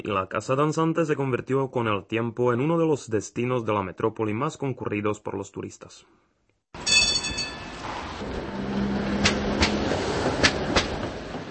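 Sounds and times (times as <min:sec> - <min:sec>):
speech: 0:00.0 - 0:06.4
tram rolling along its rails: 0:06.8 - 0:11.5.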